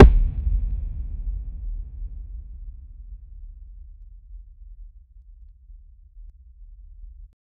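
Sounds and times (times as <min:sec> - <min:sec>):
football kick: 0:00.0 - 0:01.2.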